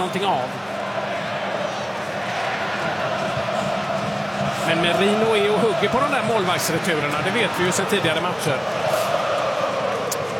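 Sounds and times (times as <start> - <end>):
speech: 0.0 - 0.7, 4.7 - 8.8
Argentine football supporters roaring in World Cup final stadium: 0.0 - 10.3.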